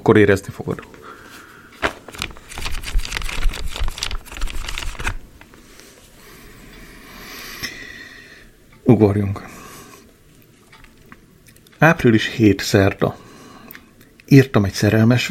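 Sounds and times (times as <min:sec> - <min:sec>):
speech: 0:00.0 - 0:01.2, 0:09.0 - 0:09.5, 0:11.8 - 0:13.2, 0:14.3 - 0:15.2
quiet room noise: 0:00.0 - 0:15.2
book pages riffled rapidly past the microphone: 0:01.8 - 0:05.5.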